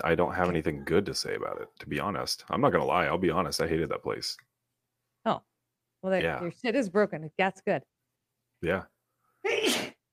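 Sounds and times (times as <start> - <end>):
speech: 0.0 - 4.5, 5.2 - 7.9, 8.6 - 9.8
single sharp loud sneeze: 9.4 - 10.0.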